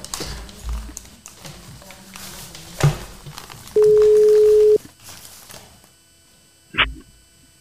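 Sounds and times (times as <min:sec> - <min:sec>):
telephone ringing tone: 0:03.8 - 0:04.8.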